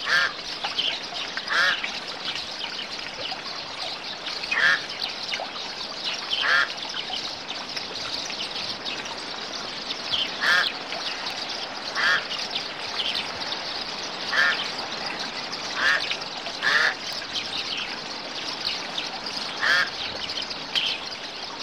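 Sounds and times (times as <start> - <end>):
birds twittering chorus: 0.0 - 21.6
loud harsh bird calls: 4.5 - 4.8, 6.4 - 6.7, 10.3 - 10.8, 11.9 - 12.3, 14.3 - 14.7, 15.8 - 17.0, 19.5 - 20.0.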